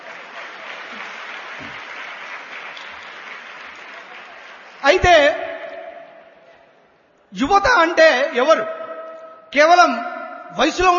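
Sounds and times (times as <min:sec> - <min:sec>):
audience clapping at a youth gathering: 0:00.0 - 0:05.3
speech: 0:04.8 - 0:05.4, 0:07.3 - 0:08.8, 0:09.5 - 0:10.9.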